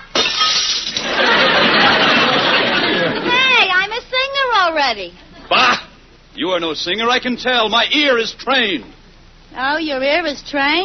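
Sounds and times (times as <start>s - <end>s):
glass shattering with tinkling and crunching fragments: 0.0s - 1.4s
laughter: 1.0s - 3.6s
speech: 4.9s - 10.8s.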